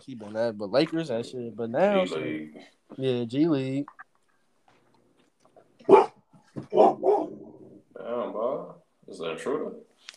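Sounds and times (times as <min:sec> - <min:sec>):
speech: 0:00.0 - 0:04.0, 0:06.6 - 0:07.4, 0:08.0 - 0:09.9
dog barking aggressively: 0:05.9 - 0:07.4.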